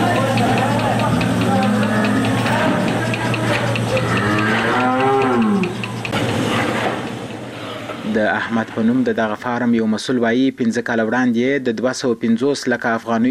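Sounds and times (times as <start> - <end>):
constant low mechanical hum: 0.0 - 9.9
cows mooing on a dairy farm in Kandahar's Dand district: 0.9 - 6.0
speech: 8.5 - 13.2.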